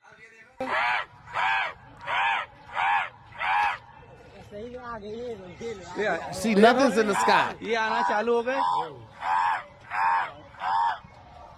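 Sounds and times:
speech: 0:00.6 - 0:01.8, 0:04.9 - 0:09.2
crows cawing in response to a call: 0:00.6 - 0:03.8, 0:06.4 - 0:11.0.

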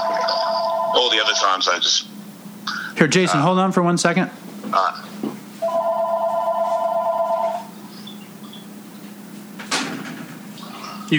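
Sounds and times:
landline telephone ringing in kitchen: 0:00.0 - 0:03.4, 0:04.5 - 0:08.9
speech: 0:01.0 - 0:02.1, 0:03.0 - 0:05.0.

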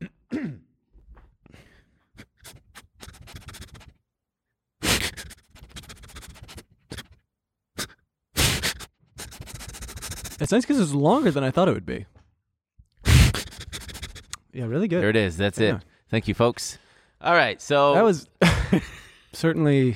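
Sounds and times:
person imitating dog sniffing with breathy snuffles: 0:02.1 - 0:04.0, 0:04.8 - 0:07.2, 0:07.8 - 0:10.5, 0:13.0 - 0:14.4
speech: 0:10.4 - 0:12.2, 0:14.6 - 0:19.9.

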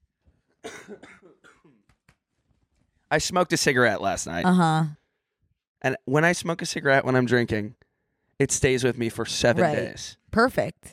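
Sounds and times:
person coughing harshly: 0:00.6 - 0:01.8
speech: 0:00.6 - 0:01.8, 0:03.1 - 0:05.0, 0:05.8 - 0:07.8, 0:08.4 - 0:10.9.

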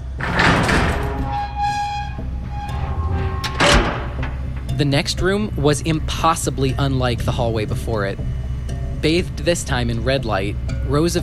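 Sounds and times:
large heavy metal door creaking open: 0:00.0 - 0:05.0
clunk of the metal door latch: 0:03.4 - 0:04.8
speech: 0:04.8 - 0:08.4, 0:09.0 - 0:11.2.

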